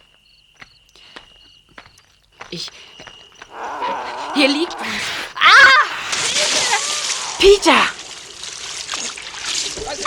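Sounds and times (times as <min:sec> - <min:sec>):
speech: 0:02.5 - 0:03.0, 0:04.4 - 0:05.9, 0:07.4 - 0:08.0
cat splashing into swimming pool water: 0:03.5 - 0:10.0.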